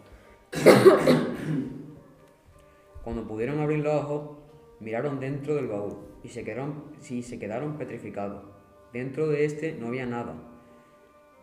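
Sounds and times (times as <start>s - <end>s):
people coughing hard from dust: 0.5s - 2.0s
speech: 0.6s - 1.8s, 3.1s - 10.5s.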